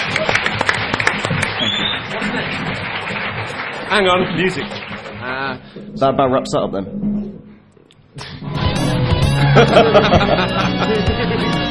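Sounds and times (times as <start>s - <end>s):
laughter: 0.0s - 5.3s, 9.4s - 11.7s
audience applause: 0.0s - 5.8s
speech: 3.9s - 4.8s, 5.4s - 7.2s, 9.6s - 11.7s.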